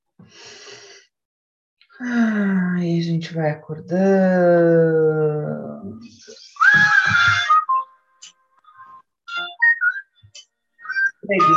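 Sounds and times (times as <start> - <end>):
deep breath: 0.2 - 1.2
speech: 2.0 - 7.5, 11.3 - 11.5.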